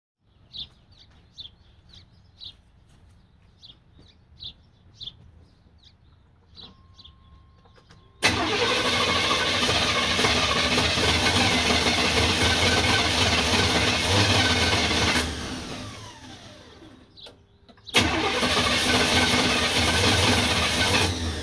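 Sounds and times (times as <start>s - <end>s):
1988 C1500 5.0L engine struggling to start: 8.2s - 17.0s, 17.8s - 21.4s.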